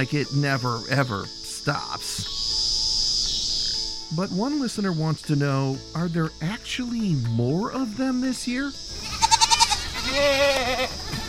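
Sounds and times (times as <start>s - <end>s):
speech: 0.0s - 2.4s, 4.1s - 9.0s, 10.1s - 11.2s
goat bleating: 8.9s - 11.2s.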